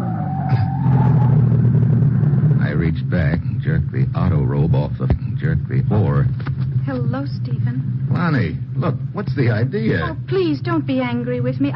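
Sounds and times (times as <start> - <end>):
thin wavering tire squeal of car braking hard and skidding: 0.0 - 2.7
car engine rumbling: 0.0 - 11.7
speech: 9.2 - 11.7.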